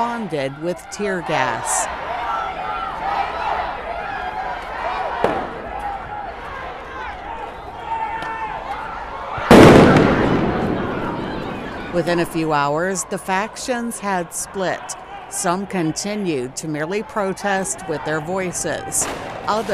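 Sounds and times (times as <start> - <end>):
speech: 0.0 - 2.0, 11.9 - 19.7
large outdoor crowd of protesters murmuring and shouting: 0.0 - 19.7
firework set off by a protester cracking: 9.5 - 12.0
loud firework blast rumbling: 9.5 - 12.2.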